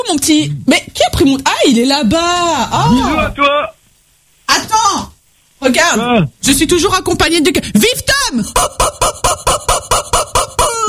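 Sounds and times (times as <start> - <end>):
speech: 0.2 - 3.7, 5.6 - 9.7
duck squawking: 8.5 - 10.8.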